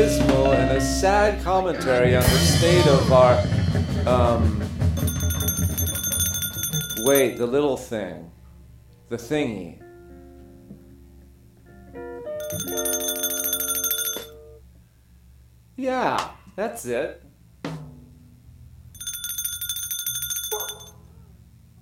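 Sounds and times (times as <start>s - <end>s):
speech: 0.0s - 4.8s, 7.0s - 8.4s, 9.1s - 9.8s, 15.8s - 17.8s
small bell ringing in bright rapid bursts: 5.0s - 7.5s, 12.4s - 14.4s, 19.0s - 21.0s.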